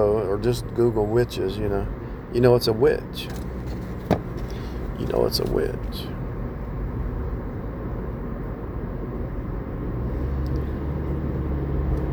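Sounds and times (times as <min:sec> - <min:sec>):
speech: 0:00.0 - 0:03.5, 0:05.0 - 0:06.2
truck with brand-new tires rumbling along the road: 0:00.0 - 0:12.1.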